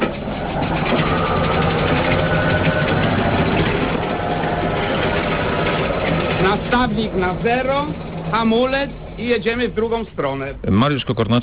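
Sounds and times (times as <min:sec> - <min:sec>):
144-tonne steam locomotive rolling onto a 1908 turntable: 0:00.0 - 0:10.6
speech: 0:06.9 - 0:11.4.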